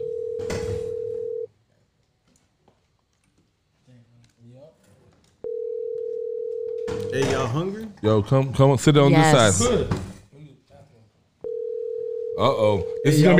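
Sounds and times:
telephone ringback tone over the line: 0.0 - 1.5, 5.4 - 7.2, 11.4 - 13.3
speech: 7.1 - 10.0, 12.4 - 13.3.

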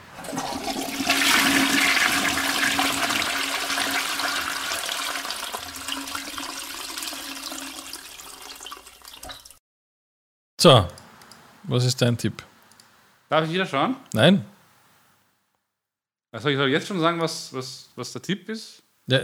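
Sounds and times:
toilet flushing: 0.0 - 9.5
speech: 10.6 - 11.0, 11.7 - 12.5, 13.3 - 14.6, 16.4 - 19.2.

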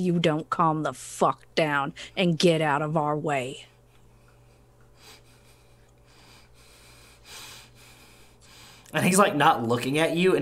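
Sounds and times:
speech: 0.0 - 3.7, 8.9 - 10.4
faint steady low hum: 0.0 - 10.4
heavy breathing: 4.0 - 9.0.

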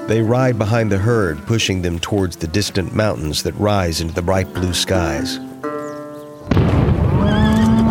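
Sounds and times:
speech: 0.1 - 5.5
rumbling burst of noise from an explosion: 6.5 - 7.9
horse on a West Texas ranch whinnying in fear as it rears: 7.1 - 7.9.

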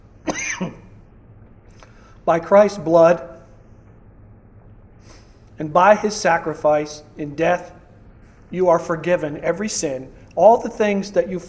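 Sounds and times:
person coughing: 0.2 - 0.9
speech: 0.6 - 0.8, 2.3 - 3.3, 5.6 - 7.8, 8.5 - 11.4.

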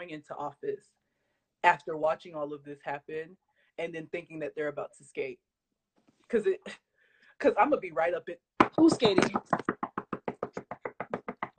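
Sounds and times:
speech: 0.1 - 1.0, 1.6 - 5.5, 6.3 - 6.8, 7.4 - 9.7
knocking on a door: 8.6 - 11.5.

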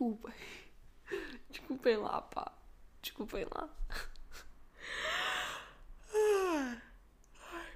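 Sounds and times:
speech: 0.1 - 4.2
yawn: 5.0 - 7.7.

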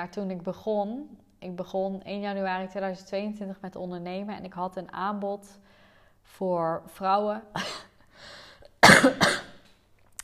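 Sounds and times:
speech: 0.0 - 9.4
person coughing: 8.8 - 9.6.

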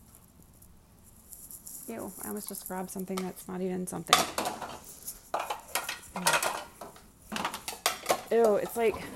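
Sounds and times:
speech: 1.9 - 4.5, 8.3 - 9.1
ceramic dishes and metal silverware clattering while being handled: 4.1 - 9.1.

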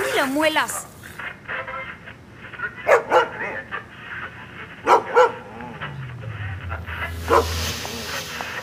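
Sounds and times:
speech: 0.2 - 0.8
dog barking in short pairs of sharp woofs: 2.9 - 3.5, 4.8 - 5.4
low droning tone: 5.4 - 8.6
steady hiss: 6.2 - 8.6.

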